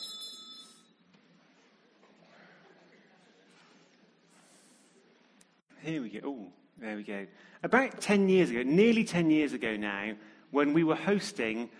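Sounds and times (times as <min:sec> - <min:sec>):
small bell rung to begin group prayer: 0:00.0 - 0:00.9
speech: 0:05.8 - 0:11.7.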